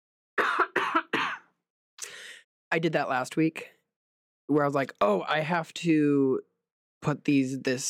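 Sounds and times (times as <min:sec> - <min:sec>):
harsh coughs into a microphone: 0:00.4 - 0:01.5
speech: 0:02.7 - 0:03.8, 0:04.5 - 0:07.8.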